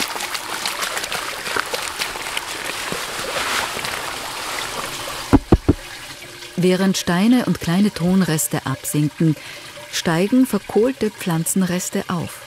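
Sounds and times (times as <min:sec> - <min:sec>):
water pouring and splashing as a soil sample is tipped into a water barrel: 0:00.0 - 0:12.4
sharp knocks: 0:05.3 - 0:05.9
speech: 0:06.6 - 0:12.4.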